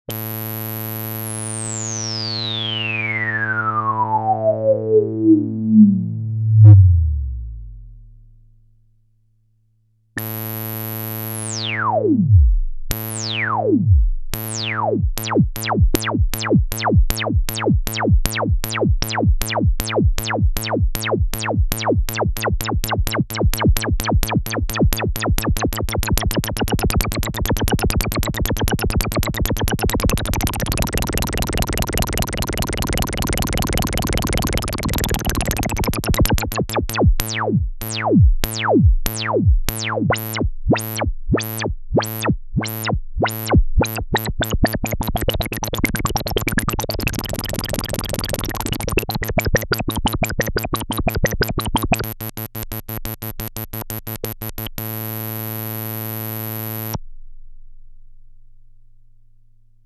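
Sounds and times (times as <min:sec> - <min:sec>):
HEX-Layer synthesizer with LFO on resonant low-pass filter: 0:00.1 - 0:08.4, 0:10.2 - 0:57.0.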